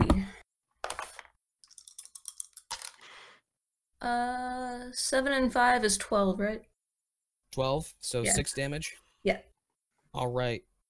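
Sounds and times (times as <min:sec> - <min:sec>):
dice being dug out and rolled: 0:00.8 - 0:03.1
speech: 0:04.0 - 0:06.7, 0:07.5 - 0:09.5, 0:10.1 - 0:10.7.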